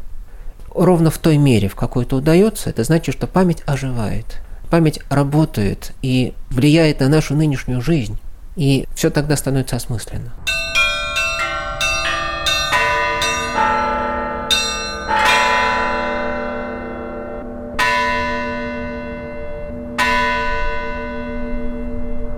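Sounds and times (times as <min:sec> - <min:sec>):
speech: 0:00.8 - 0:10.8
church bells striking the hour: 0:10.4 - 0:22.3.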